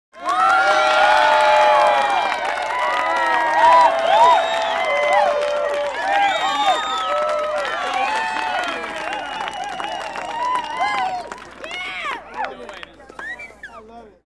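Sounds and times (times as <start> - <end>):
medium crowd of children applauding: 0.1 - 14.1.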